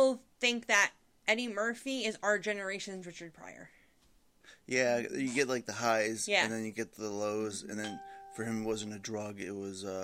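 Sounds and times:
speech: 0.1 - 3.8, 4.7 - 10.0
short electronic phone notification chime: 7.8 - 9.2.

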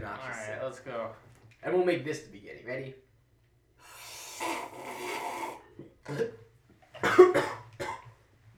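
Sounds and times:
speech: 0.1 - 3.1, 5.8 - 6.4
person coughing and sputtering after sipping iced tea: 7.0 - 8.1.

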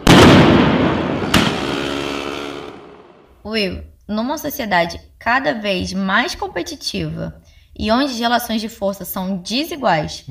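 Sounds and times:
bomb exploding at a street protest: 0.0 - 3.3
speech: 3.4 - 10.2.

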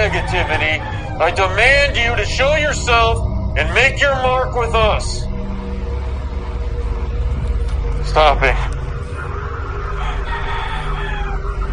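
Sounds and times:
rooster crowing outside: 0.0 - 3.0, 9.2 - 11.7
low rumble: 0.0 - 11.7
speech: 0.1 - 5.3, 8.1 - 8.7.

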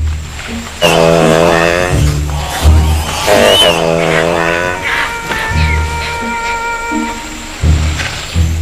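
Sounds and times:
low rumbling noise: 0.0 - 8.6
male proboscis monkey honking calls in Borneo: 0.8 - 7.4.

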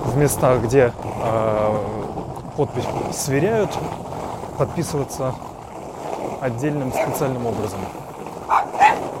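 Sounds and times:
speech: 0.2 - 1.9, 2.6 - 5.5, 6.4 - 8.0
dog barking at a skateboard: 6.9 - 7.2, 8.5 - 9.0.

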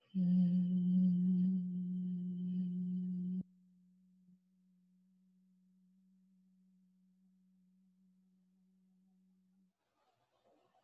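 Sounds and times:
gentle nasal hum at one low pitch: 0.0 - 3.6
speech: 0.1 - 0.4.

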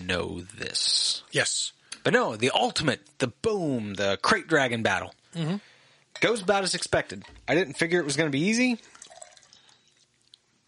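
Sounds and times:
speech: 0.1 - 9.0
beer being poured: 8.0 - 10.4.

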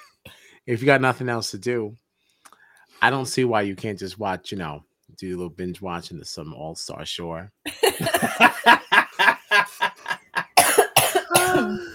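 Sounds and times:
speech: 0.7 - 2.0, 3.0 - 8.8
laughter: 7.7 - 10.6
person coughing: 7.9 - 8.6, 10.6 - 11.9.

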